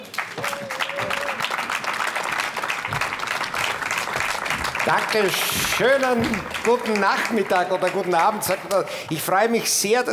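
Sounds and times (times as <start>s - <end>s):
live audience of thousands clapping at the Museumsquartier: 0.0s - 10.1s
speech: 4.9s - 10.1s.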